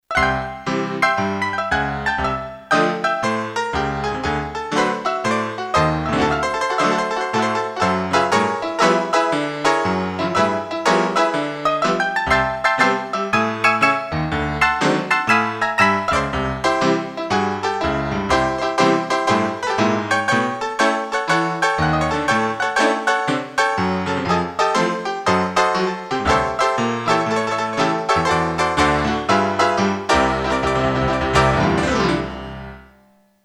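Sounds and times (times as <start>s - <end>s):
grand piano on Korg DSS-1: 0.0s - 33.2s.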